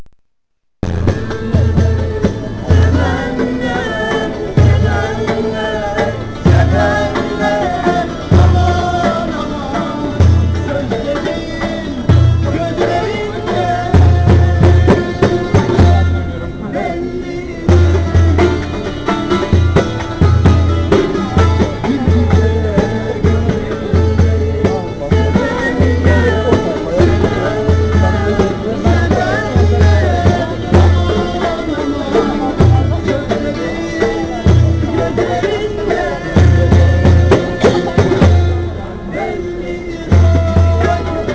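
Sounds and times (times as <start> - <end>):
street music: 0.8 - 41.3.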